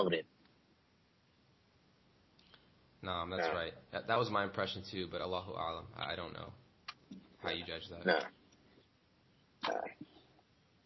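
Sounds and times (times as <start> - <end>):
speech: 0.0 - 0.4, 3.0 - 8.4, 9.6 - 10.0
person sneezing: 9.6 - 10.2.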